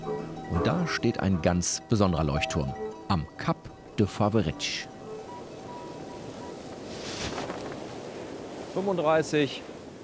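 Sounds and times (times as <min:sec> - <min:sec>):
wind blowing at a harbour: 0:00.0 - 0:10.0
speech: 0:00.8 - 0:04.9, 0:08.8 - 0:09.7.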